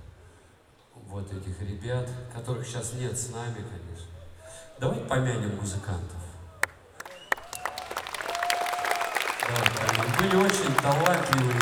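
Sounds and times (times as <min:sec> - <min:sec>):
speech: 0:01.1 - 0:04.2, 0:04.8 - 0:06.2, 0:09.5 - 0:11.5
audience applause at a concert tribute to late musicians: 0:06.6 - 0:11.5.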